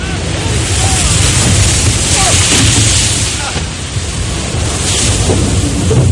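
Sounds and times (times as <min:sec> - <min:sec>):
constant roar of wind at Cape Horn: 0:00.0 - 0:06.1
heavy wave crashing and surging across a frigate deck at Cape Horn: 0:00.0 - 0:06.1
rushing water at Cape Horn: 0:00.0 - 0:06.1.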